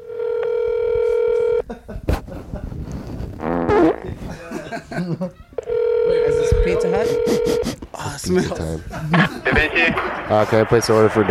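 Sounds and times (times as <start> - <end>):
buzzy electronic telephone tone: 0.0 - 1.6, 5.6 - 7.8
laughter: 1.6 - 2.7, 4.1 - 5.6, 7.0 - 11.2
speech: 5.0 - 5.5, 6.1 - 11.2.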